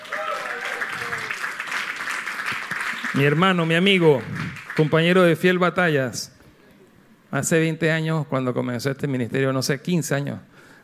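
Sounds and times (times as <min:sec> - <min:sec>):
faint voices or cheers: 0:00.0 - 0:01.6
audience applauding: 0:00.0 - 0:05.2
speech: 0:03.1 - 0:06.3, 0:07.3 - 0:10.7.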